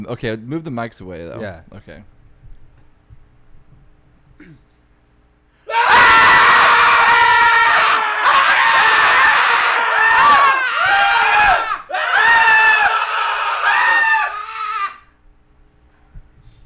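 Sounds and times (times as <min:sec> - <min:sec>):
speech: 0:00.0 - 0:02.2
several people screaming together: 0:05.7 - 0:15.1.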